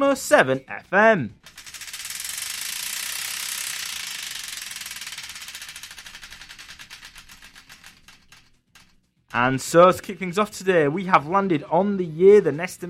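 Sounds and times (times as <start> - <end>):
speech: 0.0 - 1.6, 9.4 - 12.8
prize wheel spun on a radio show, pointer clicking: 1.4 - 10.6.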